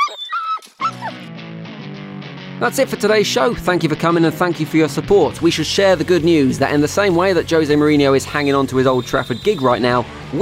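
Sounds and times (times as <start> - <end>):
dog whimpering and whining: 0.0 - 1.3
speech: 2.6 - 10.4.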